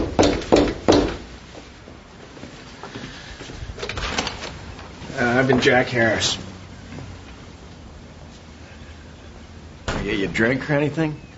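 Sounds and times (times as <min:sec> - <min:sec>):
sharp thuds at a door: 0:00.0 - 0:01.2
speech: 0:05.4 - 0:06.5, 0:10.3 - 0:11.3.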